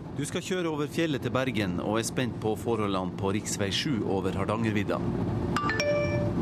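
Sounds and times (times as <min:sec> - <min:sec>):
speech: 0:00.2 - 0:05.7
text message notification chime with two bright ding tones: 0:05.6 - 0:06.3.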